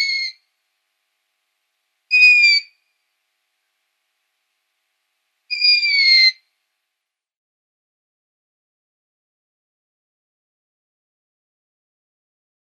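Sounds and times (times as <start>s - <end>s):
downy long-eared owl young squeaking: 0.0s - 0.4s, 2.1s - 2.7s, 5.5s - 6.4s.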